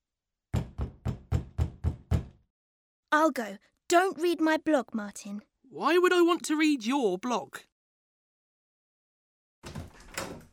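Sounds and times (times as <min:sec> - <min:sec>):
firm knocking on a door: 0:00.5 - 0:02.4
speech: 0:03.1 - 0:07.7.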